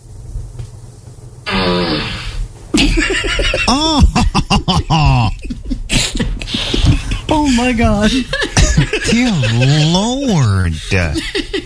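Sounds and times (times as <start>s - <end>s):
buzzy fart sound effect from a smart speaker: 1.5s - 2.5s
laughter: 2.8s - 11.6s
speech: 3.7s - 5.2s, 7.6s - 8.5s, 9.1s - 11.6s.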